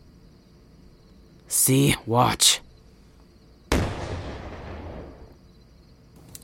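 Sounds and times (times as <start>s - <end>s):
speech: 1.5s - 2.6s
small explosion igniting a campfire: 3.7s - 5.3s.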